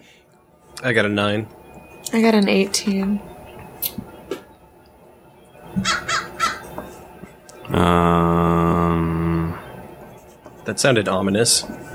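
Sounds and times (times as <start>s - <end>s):
speech: 0.8s - 3.3s, 7.7s - 8.4s, 10.7s - 11.9s
crow cawing: 5.8s - 6.7s.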